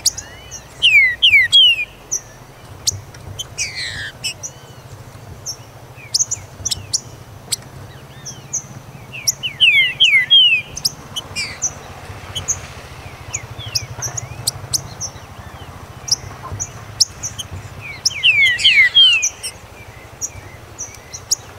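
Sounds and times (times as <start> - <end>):
high chirping and ticking: 0.0 - 21.5
Green-winged saltator giving downslurred whistles: 9.5 - 10.7, 18.2 - 19.4.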